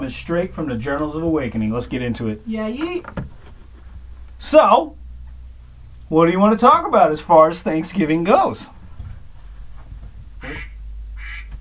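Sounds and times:
speech: 0.0 - 3.3, 4.4 - 5.0, 6.1 - 8.8
low steady rumble: 0.0 - 11.5
duck quacking: 10.4 - 11.5.

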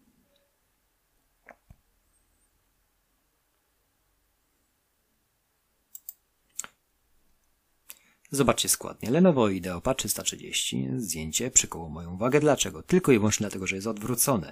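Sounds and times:
computer mouse clicking on a laptop listing: 5.9 - 6.8
speech: 8.3 - 14.5.

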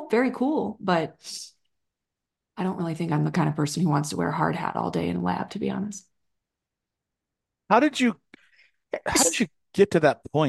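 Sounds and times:
speech: 0.1 - 1.6, 2.6 - 6.1, 7.7 - 8.2, 8.9 - 10.4
person sneezing: 9.0 - 9.4.

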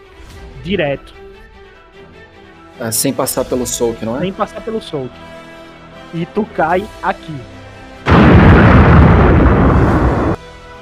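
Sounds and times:
speech: 0.6 - 1.2, 2.8 - 5.4, 6.1 - 7.6
huge explosion blast and rumble: 8.1 - 10.4.

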